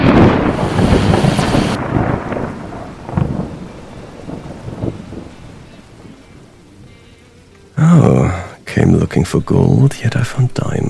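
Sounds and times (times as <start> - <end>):
thunder rolling: 0.0 - 6.6
heavy rain pouring: 0.0 - 10.8
speech: 8.9 - 10.8.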